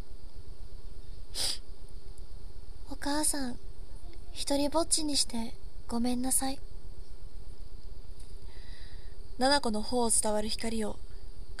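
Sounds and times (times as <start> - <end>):
low hum: 0.0 - 11.5
nasal sniffle: 1.3 - 1.6
speech: 3.0 - 3.7, 4.4 - 6.7, 9.4 - 11.0.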